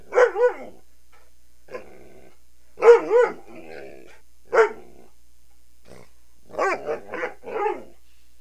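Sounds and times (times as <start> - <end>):
barking: 0.0 - 0.8, 1.7 - 5.1, 5.9 - 8.0.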